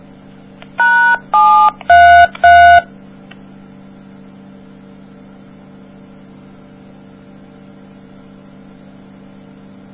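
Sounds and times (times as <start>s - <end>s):
low hum: 0.0s - 9.9s
telephone keypad dialing tones on a three-way call: 0.8s - 2.8s.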